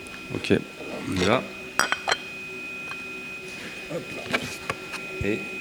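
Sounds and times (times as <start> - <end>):
speech: 0.5 - 1.5, 3.9 - 4.6, 5.3 - 5.6
coffee cup turned over onto ceramic saucer: 1.8 - 2.3.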